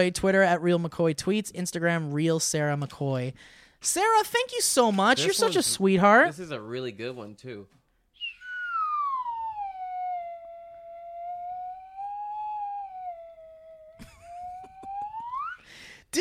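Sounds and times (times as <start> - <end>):
speech: 0.0 - 7.8
slide whistle being played: 8.2 - 15.8.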